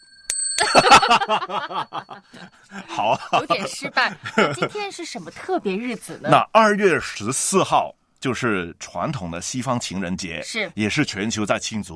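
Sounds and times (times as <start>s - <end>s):
small bell being struck: 0.0s - 2.7s
laughter: 0.6s - 5.3s
speech: 0.7s - 11.9s.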